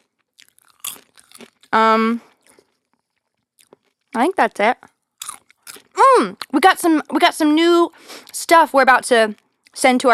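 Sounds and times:
person chewing crisp food: 0.0 - 4.2, 4.9 - 6.5
speech: 1.4 - 2.3, 4.2 - 4.9, 6.0 - 10.1.

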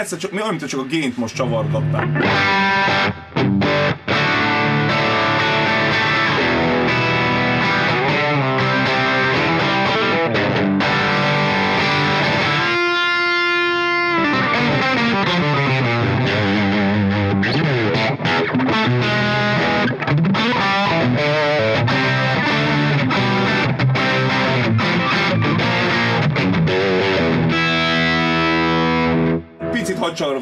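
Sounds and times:
speech: 0.0 - 3.6
overdriven electric guitar through an amplifier: 1.6 - 29.8.

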